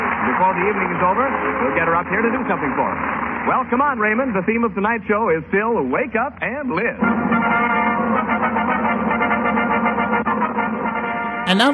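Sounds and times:
speech: 0.4 - 7.7, 11.5 - 11.7
brassy orchestral fanfare with old-radio sound: 7.0 - 11.7.

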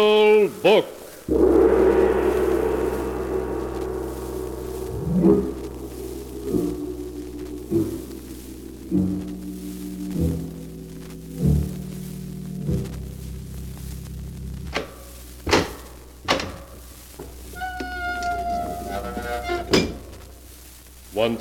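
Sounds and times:
speech: 0.0 - 1.6
ponderous secret vault door groaning open: 1.3 - 12.2, 17.4 - 20.1
low rumble: 1.3 - 20.7.

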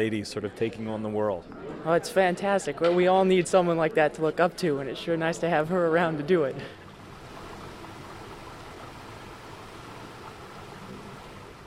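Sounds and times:
speech: 0.0 - 6.8
brook water flowing: 3.1 - 11.6.

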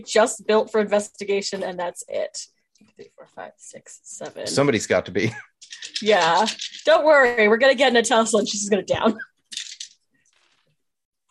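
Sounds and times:
speech: 0.0 - 9.3
dice being rolled: 5.6 - 7.0, 9.5 - 10.6.

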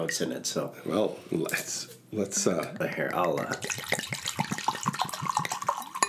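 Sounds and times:
speech: 0.0 - 4.2
vodka glugging and splashing into a glass: 2.8 - 6.0.

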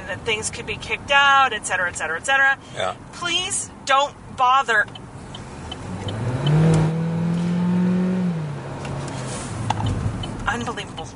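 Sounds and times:
speech: 0.1 - 5.0, 10.5 - 11.1
car engine revving as the car pulls away: 4.9 - 10.9.

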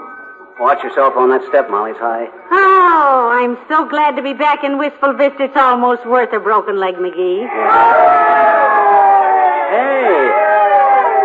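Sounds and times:
speech: 0.6 - 8.6, 9.7 - 10.5
crowd cheering and shouting: 7.4 - 11.2.

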